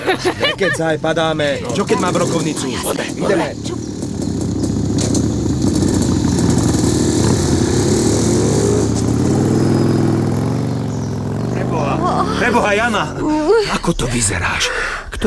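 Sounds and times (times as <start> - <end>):
laughter: 0.0 - 3.6, 11.6 - 14.0
motorcycle engines of a group of motorcyclists revving: 0.0 - 13.9
speech: 0.2 - 3.9, 12.6 - 15.2.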